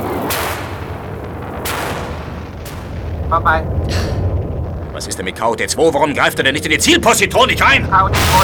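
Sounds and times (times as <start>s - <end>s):
gunfire from space fighters in a radio drama: 0.0s - 5.5s, 7.8s - 8.4s
constant roaring noise: 0.0s - 8.4s
speech: 3.3s - 4.2s, 5.0s - 8.4s.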